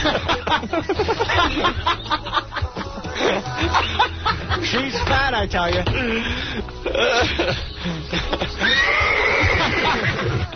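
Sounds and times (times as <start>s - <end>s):
laughter: 0.0s - 10.5s
speech: 0.1s - 2.1s, 5.4s - 8.9s
horse neighing loudly with a high-pitched whinny: 8.6s - 10.4s.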